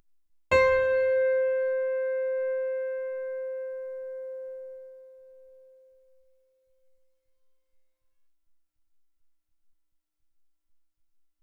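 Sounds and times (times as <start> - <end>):
high piano notes: 0.5 - 5.8.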